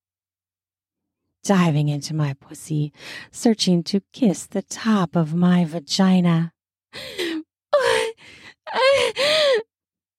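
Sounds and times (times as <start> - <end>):
speech: 1.4 - 7.2
breathy woman gasping with desire: 7.0 - 9.7.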